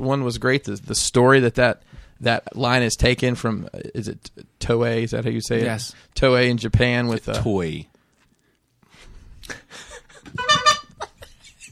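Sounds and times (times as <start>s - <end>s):
speech: 0.0s - 7.9s
horn honking: 10.4s - 10.9s.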